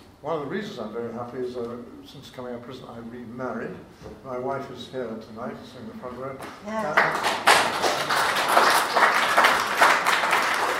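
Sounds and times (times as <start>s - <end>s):
speech: 0.2s - 8.5s
room full of people applauding: 7.0s - 10.7s.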